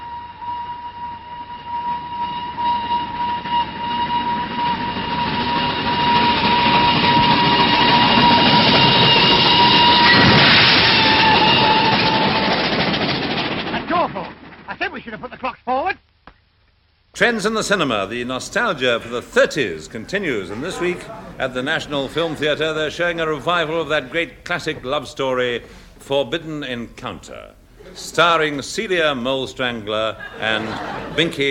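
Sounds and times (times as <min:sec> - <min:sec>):
steady high metallic squeal of train: 0:00.0 - 0:13.4
train passing on rails: 0:00.0 - 0:15.1, 0:17.2 - 0:26.1, 0:27.3 - 0:31.4
speech: 0:17.2 - 0:31.4
laughter: 0:18.6 - 0:24.1, 0:27.8 - 0:28.6, 0:29.8 - 0:31.4.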